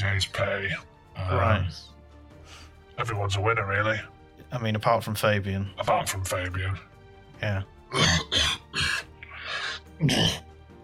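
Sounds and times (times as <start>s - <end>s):
speech: 0.0s - 8.5s, 10.0s - 10.4s
man coughing: 7.9s - 9.1s, 10.0s - 10.5s.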